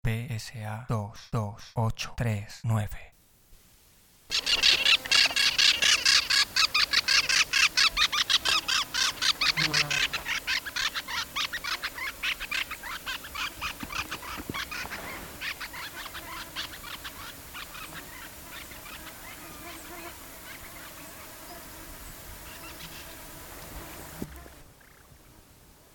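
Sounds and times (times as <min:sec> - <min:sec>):
speech: 0:00.4 - 0:03.2, 0:09.6 - 0:10.0
pair of long-tailed parakeets squawking while flying past: 0:04.3 - 0:21.0.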